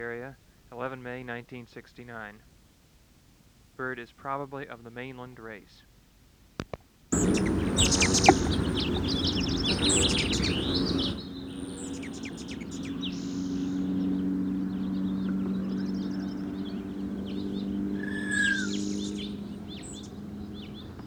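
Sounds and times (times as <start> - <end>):
speech: 0.0 - 2.5, 3.8 - 5.9
male Allen's hummingbird aggressive chatter: 7.2 - 21.0
steady buzz: 7.2 - 21.0.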